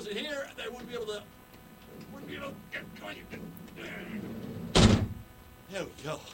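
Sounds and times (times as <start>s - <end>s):
people talking: 0.0s - 1.3s, 1.9s - 4.9s, 5.7s - 6.3s
big heavy door closing with deep thud: 1.9s - 5.3s.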